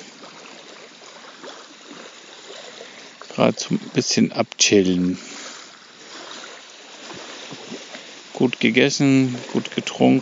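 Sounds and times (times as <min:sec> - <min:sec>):
shallow water washing up to feet with faint gurgles: 0:00.0 - 0:10.2
speech: 0:03.4 - 0:05.3, 0:08.4 - 0:10.2.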